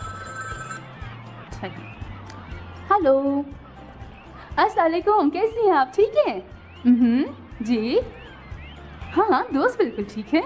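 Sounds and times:
telephone ringing with an incoming call: 0:00.0 - 0:01.0
speech: 0:01.6 - 0:02.1, 0:02.9 - 0:03.6, 0:04.6 - 0:08.2, 0:09.2 - 0:10.4.

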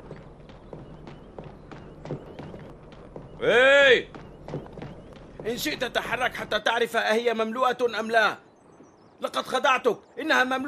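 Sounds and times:
donkey hooves clopping while running away: 0:00.0 - 0:07.2
speech: 0:02.1 - 0:02.3, 0:03.4 - 0:04.7, 0:05.4 - 0:08.4, 0:09.2 - 0:10.6.

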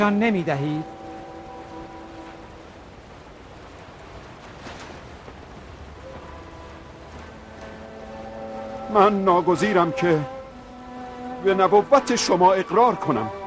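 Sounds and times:
speech: 0:00.0 - 0:01.0, 0:08.9 - 0:10.4, 0:11.4 - 0:13.4
faint tonal hums: 0:00.0 - 0:13.4
steady rain pouring: 0:00.0 - 0:13.4.

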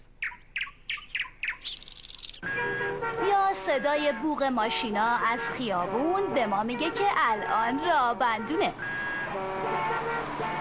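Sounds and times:
bird singing in a tree: 0:00.0 - 0:03.0
speech: 0:03.1 - 0:10.5.

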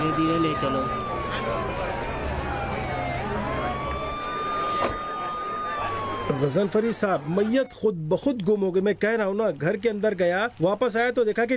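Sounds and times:
speech: 0:00.0 - 0:01.9, 0:06.3 - 0:11.5
ambulance siren wailing as ambulance arrives: 0:00.0 - 0:08.0
crowd murmuring on a noisy street: 0:00.0 - 0:08.1.

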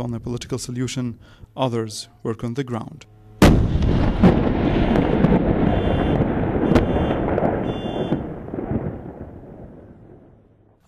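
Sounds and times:
speech: 0:00.0 - 0:05.0
artillery fire from army guns aimed at a sniper position: 0:03.4 - 0:10.5
loud cracking artillery booms: 0:03.4 - 0:10.8.

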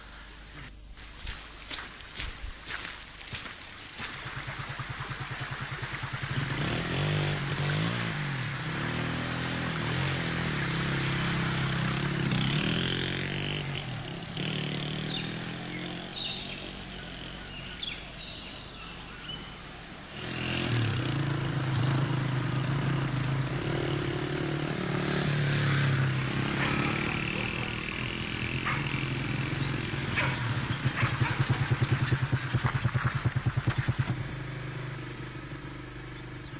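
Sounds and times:
motorcycle engine starting and revving: 0:04.0 - 0:36.5.

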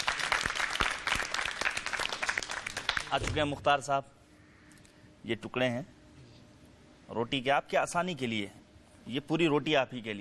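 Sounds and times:
loud audience applause: 0:00.0 - 0:03.1
speech: 0:03.1 - 0:04.2, 0:05.2 - 0:06.0, 0:07.1 - 0:10.2.

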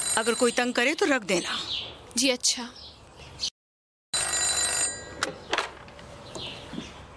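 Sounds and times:
speech: 0:00.2 - 0:03.5
old-style telephone bell ringing: 0:04.1 - 0:05.3.

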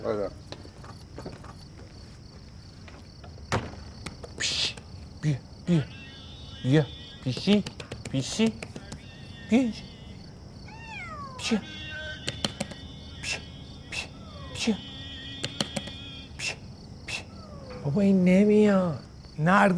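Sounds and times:
speech: 0:00.0 - 0:00.5, 0:05.2 - 0:06.0, 0:06.6 - 0:08.7, 0:09.5 - 0:09.9, 0:11.5 - 0:11.8, 0:14.6 - 0:14.9, 0:17.9 - 0:19.7
crickets chirping: 0:00.0 - 0:19.7
sharp clicks: 0:07.3 - 0:09.0, 0:12.2 - 0:12.8, 0:15.4 - 0:16.0
stray cat meowing: 0:08.9 - 0:16.3, 0:17.3 - 0:18.0.

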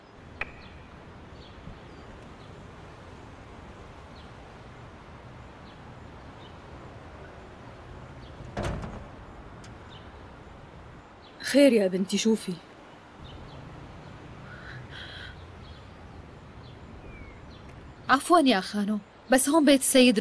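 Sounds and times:
steady hissy background: 0:00.0 - 0:20.2
door opening with a rattling clunk: 0:08.3 - 0:09.9
speech: 0:11.5 - 0:12.7, 0:18.2 - 0:20.2
faint chirps: 0:12.9 - 0:19.2.

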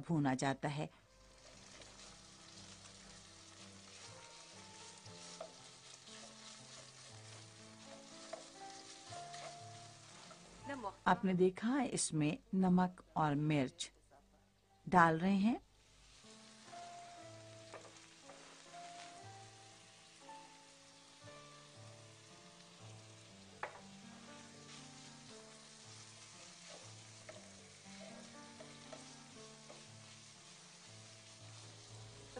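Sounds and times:
speech: 0:00.0 - 0:01.0, 0:10.7 - 0:14.0, 0:14.9 - 0:15.6
minced meat with salt and chili sizzling in a hot pan: 0:01.1 - 0:12.4, 0:14.8 - 0:32.3
back of a spoon scraping and spreading minced meat in a pan: 0:01.4 - 0:10.6, 0:22.7 - 0:32.3.

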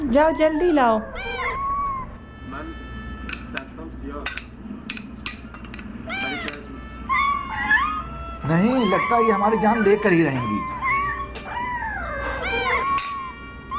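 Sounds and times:
several cats meowing: 0:00.0 - 0:02.3, 0:06.0 - 0:13.7
speech: 0:00.1 - 0:01.3, 0:03.5 - 0:04.4, 0:06.1 - 0:06.7, 0:08.4 - 0:10.8.

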